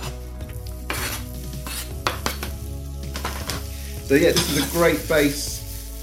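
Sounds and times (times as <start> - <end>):
onion frying in a pan: 0.0 - 6.0
utensil stirring, scraping and clinking against the pan: 0.9 - 2.5, 3.1 - 3.6, 4.2 - 5.0
speech: 4.1 - 5.5.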